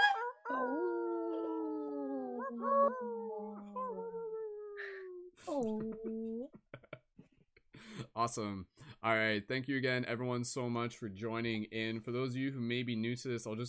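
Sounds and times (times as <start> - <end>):
people imitating wolf howls with their voices: 0.0 - 6.4
speech: 8.2 - 13.6.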